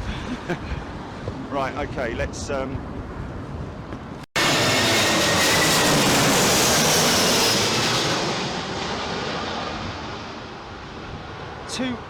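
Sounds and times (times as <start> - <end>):
strong gusting wind during Storm Eunice: 0.0 - 12.0
speech: 0.5 - 0.8, 1.5 - 3.0, 11.8 - 12.0
jet airplane landing in strong gusting wind during Storm Eunice: 2.8 - 12.0.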